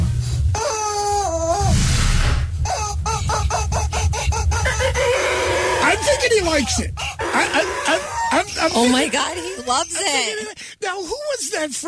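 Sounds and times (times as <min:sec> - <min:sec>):
low rumble: 0:00.0 - 0:11.0
rubber chicken toy squawking and squeaking: 0:02.7 - 0:06.2
laughter: 0:02.9 - 0:05.0, 0:05.8 - 0:10.6
speech: 0:06.4 - 0:11.8.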